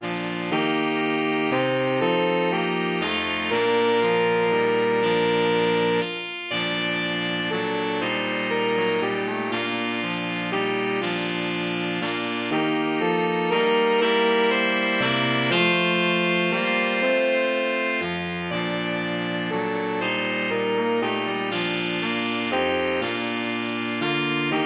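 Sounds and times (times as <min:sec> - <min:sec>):
saxophone quartet playing a carol: 0:00.0 - 0:24.6.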